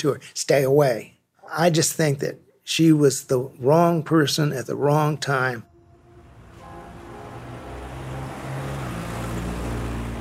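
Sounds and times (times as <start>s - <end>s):
speech: 0.0s - 5.7s
low steady vehicle engine hum on a windy paved residential road: 5.6s - 10.2s.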